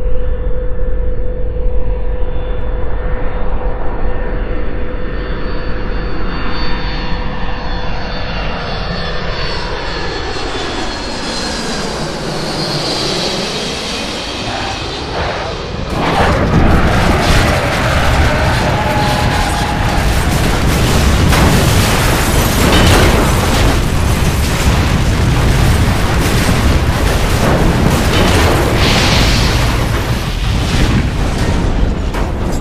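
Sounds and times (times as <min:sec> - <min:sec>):
landing spacecraft engines roaring: 0:00.2 - 0:32.6
sudden loud burst: 0:13.7 - 0:32.6.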